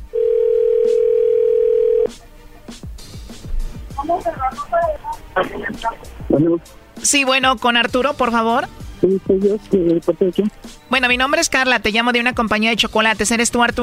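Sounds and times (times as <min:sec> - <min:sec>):
telephone dial tone while a call is dialed: 0:00.1 - 0:02.1
speech: 0:04.1 - 0:13.8.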